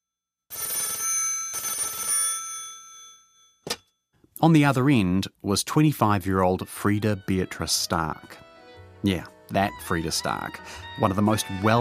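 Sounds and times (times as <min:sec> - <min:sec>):
old-fashioned telephone bell ringing: 0:00.5 - 0:03.6
speech: 0:04.4 - 0:08.4, 0:09.0 - 0:11.8.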